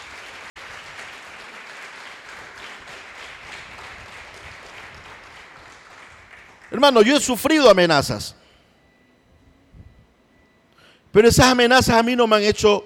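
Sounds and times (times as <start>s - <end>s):
congregation applauding: 0.0s - 8.0s
speech: 6.7s - 8.4s, 11.1s - 12.8s.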